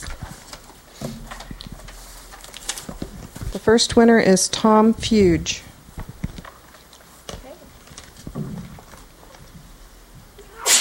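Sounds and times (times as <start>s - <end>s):
faint shuffling: 0.0s - 10.3s
speech: 3.6s - 5.6s
loud sneeze at City Hall during a prize drawing: 10.5s - 10.7s.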